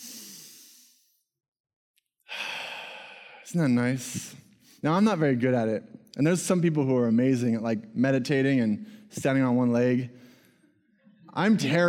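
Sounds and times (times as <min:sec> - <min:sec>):
person breathing in through the nose and out: 0:00.0 - 0:01.2, 0:02.3 - 0:03.6, 0:08.8 - 0:09.1, 0:10.1 - 0:10.8
speech: 0:03.5 - 0:10.2, 0:11.4 - 0:11.8.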